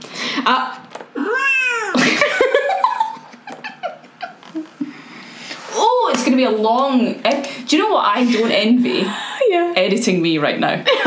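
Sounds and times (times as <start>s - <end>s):
speech: 0.4s - 0.8s, 6.4s - 11.0s
cat meowing and yowling: 1.2s - 2.0s
laughter: 1.9s - 4.9s.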